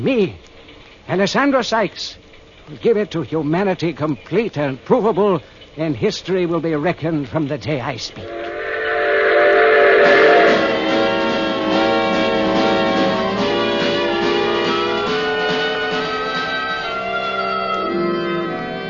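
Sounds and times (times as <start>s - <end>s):
speech: 0.0s - 0.4s, 1.1s - 8.4s
moving train rumbling on rails: 8.2s - 17.0s
moving train whistle: 8.2s - 18.8s.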